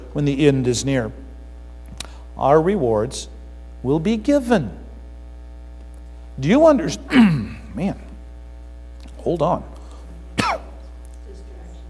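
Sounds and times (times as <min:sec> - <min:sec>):
speech: 0:00.2 - 0:01.2, 0:02.4 - 0:04.8, 0:06.4 - 0:08.0, 0:09.2 - 0:09.7
person coughing: 0:07.1 - 0:07.7, 0:10.4 - 0:10.8.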